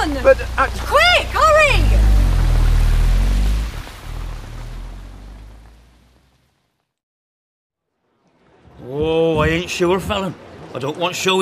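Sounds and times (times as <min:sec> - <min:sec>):
speech: 0:00.0 - 0:01.8, 0:09.6 - 0:11.3
water surging up through a drain: 0:00.4 - 0:05.5.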